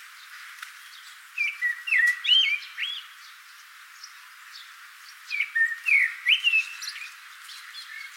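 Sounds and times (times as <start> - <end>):
common blackbird Turdus merula whistled and chirpy notes: 1.4 - 3.0, 5.3 - 7.0.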